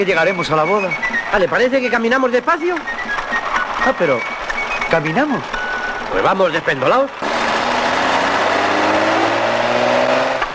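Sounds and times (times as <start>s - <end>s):
speech: 0.0s - 3.0s, 3.8s - 4.3s, 4.9s - 7.3s
broadband road noise: 0.0s - 10.5s
car engine revving as the car pulls up: 7.1s - 10.5s.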